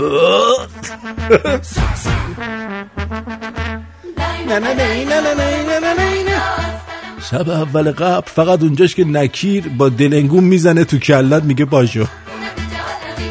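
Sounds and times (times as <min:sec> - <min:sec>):
voice imitating a deep drawn-out groaning fart: 0:00.0 - 0:02.4
speech: 0:00.0 - 0:03.3, 0:04.5 - 0:12.8.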